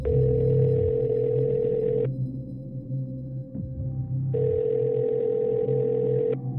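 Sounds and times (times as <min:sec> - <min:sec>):
phone ringback tone: 0:00.1 - 0:02.1, 0:04.4 - 0:06.4.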